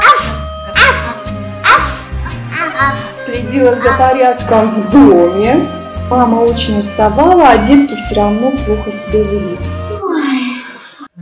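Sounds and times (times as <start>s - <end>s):
small dog yapping with high-pitched barks: 0.0s - 2.0s
soft music: 0.0s - 10.6s
speech: 2.8s - 9.7s.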